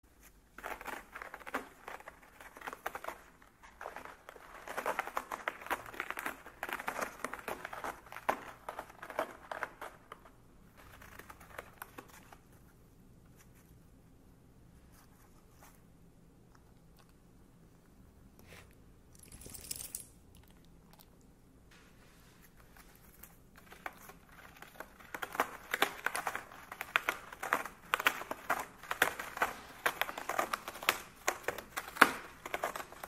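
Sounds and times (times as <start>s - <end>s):
cat scratching: 0.1s - 13.9s, 22.4s - 33.0s.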